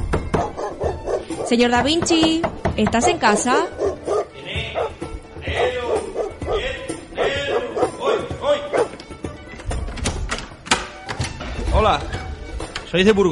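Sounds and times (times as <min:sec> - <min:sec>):
dull thumps: 0:00.0 - 0:11.5
speech: 0:01.5 - 0:03.8, 0:11.8 - 0:12.2, 0:12.9 - 0:13.2
robot dog barking: 0:03.0 - 0:09.0.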